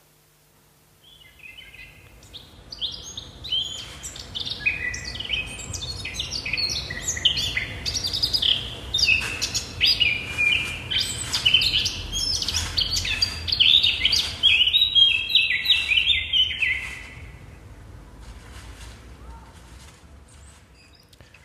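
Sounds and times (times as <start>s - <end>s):
faint low hum: 0.0s - 21.4s
Eurasian blackcap singing a rapid warbling song: 1.0s - 17.4s.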